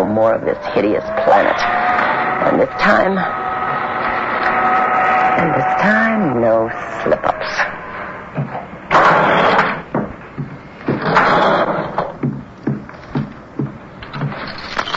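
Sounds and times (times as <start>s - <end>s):
heavy objects dragged and shoved against a door: 0.0s - 14.9s
speech: 0.1s - 3.4s, 5.4s - 7.7s
dull thuds: 8.0s - 14.5s
door being shut and barricaded: 8.4s - 14.9s.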